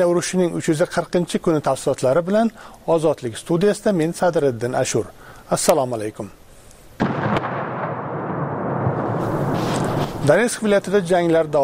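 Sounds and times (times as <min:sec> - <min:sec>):
speech: 0:00.0 - 0:06.4, 0:10.3 - 0:11.6
explosions in city streets during the war in Ukraine: 0:07.0 - 0:10.6.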